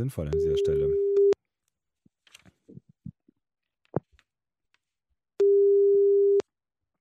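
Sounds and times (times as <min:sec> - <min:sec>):
speech: 0:00.0 - 0:01.0
telephone ringback tone while a call is placed: 0:05.4 - 0:06.4.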